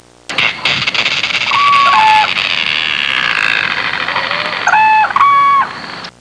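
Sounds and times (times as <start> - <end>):
Everglades bird sound: 1.3 - 6.1.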